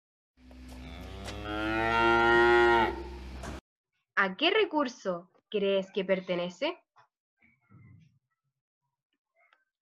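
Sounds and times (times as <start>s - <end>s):
cow mooing: 0.7s - 3.3s
speech: 4.2s - 6.8s.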